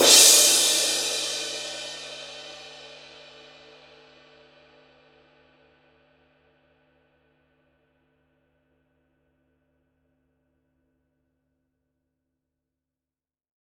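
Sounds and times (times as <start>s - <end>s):
20-inch Paiste Rude basher crash cymbal struck on the edge: 0.0s - 4.4s.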